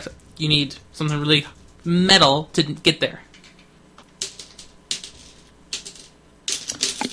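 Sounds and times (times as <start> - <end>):
speech: 0.0 - 3.3
stacked tower of small hard objects wobbling, clattering and rattling: 4.2 - 7.1.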